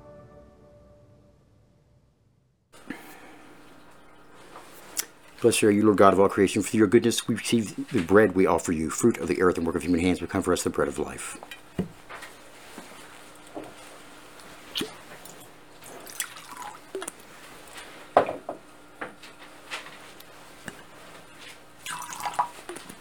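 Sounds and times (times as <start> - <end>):
water poured into a wine chalice: 2.8 - 5.6, 14.4 - 17.4, 21.8 - 23.0
speech: 5.4 - 11.6.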